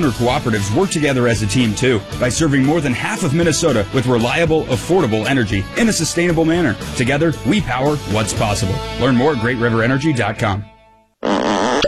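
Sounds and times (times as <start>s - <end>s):
speech: 0.0s - 11.8s
fart sound effect: 11.2s - 11.8s.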